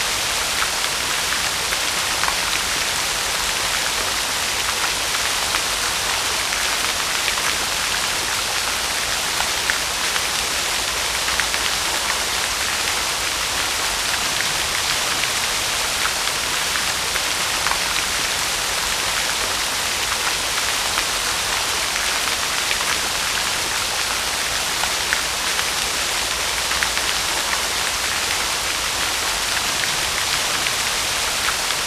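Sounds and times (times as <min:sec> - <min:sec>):
fountain splashing: 0:00.0 - 0:31.8.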